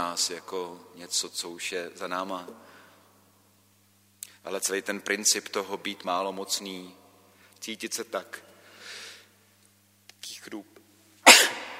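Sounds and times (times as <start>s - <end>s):
speech: 0.0s - 2.7s, 4.4s - 7.0s, 7.6s - 8.5s, 10.4s - 10.7s
soft hiss: 0.0s - 11.7s
quick breathy inhales: 2.6s - 3.1s, 8.6s - 9.4s
person sneezing loudly: 11.2s - 11.7s.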